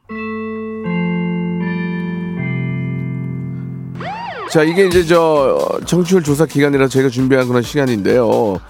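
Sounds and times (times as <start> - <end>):
golden-bell electronic chime jingle signalling a radio quiz: 0.1 - 5.4
speech: 4.5 - 8.6.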